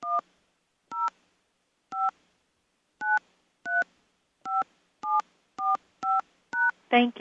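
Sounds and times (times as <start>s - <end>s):
phone keypad two-tone beeps entering a ticket number: 0.9s - 1.1s, 1.9s - 2.1s, 3.0s - 3.8s, 4.5s - 6.8s.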